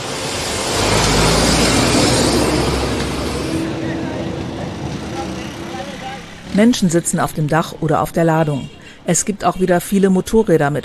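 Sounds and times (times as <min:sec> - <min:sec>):
heavy garbage truck rumbling past: 0:00.0 - 0:07.9
broadband road noise: 0:00.0 - 0:10.8
speech: 0:06.6 - 0:10.8.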